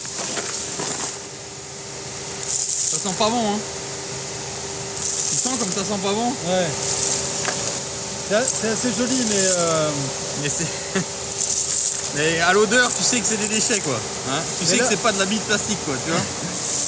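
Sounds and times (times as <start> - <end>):
plastic shredder running with a low mechanical hum: 0.0 - 16.8
plastic shredder harsh hissing grinding bursts: 2.2 - 3.8, 4.4 - 16.8
speech: 3.0 - 3.8, 5.6 - 7.0, 8.3 - 11.2, 12.2 - 16.5
laughter: 10.4 - 11.2, 14.3 - 16.6.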